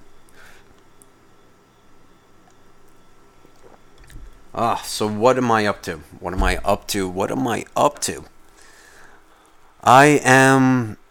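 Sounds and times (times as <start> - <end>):
low hiss: 0.0 - 11.0
person sipping a drink with wet mouth sounds: 3.4 - 4.4
speech: 4.6 - 8.3, 9.8 - 11.0.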